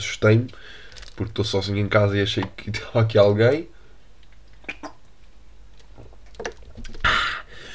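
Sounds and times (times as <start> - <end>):
speech: 0.0 - 3.8
person drinking water with swallows and gulps: 4.5 - 5.1, 5.9 - 7.2.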